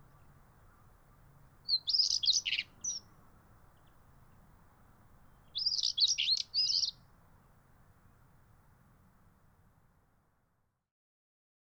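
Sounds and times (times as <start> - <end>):
faint low background hiss: 0.0 - 8.9
male European stonechat singing at Kennemerduinen, Noord-Holland, Netherlands: 1.7 - 3.0, 5.6 - 6.9.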